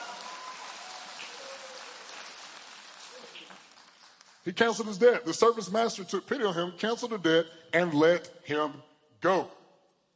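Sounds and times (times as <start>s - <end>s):
large audience clapping hands in praise: 0.0s - 4.4s
speech: 4.4s - 9.6s.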